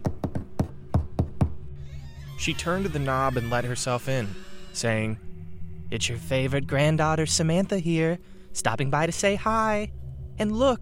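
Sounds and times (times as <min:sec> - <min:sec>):
lacquered fingertips knocking on the bottom half of a door: 0:00.0 - 0:01.6
faint low hum: 0:01.6 - 0:10.7
speech: 0:02.4 - 0:05.3, 0:05.9 - 0:10.7.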